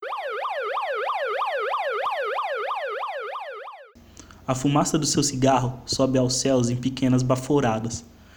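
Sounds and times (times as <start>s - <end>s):
emergency vehicle siren yelping: 0.0s - 4.0s
speech: 4.5s - 8.1s.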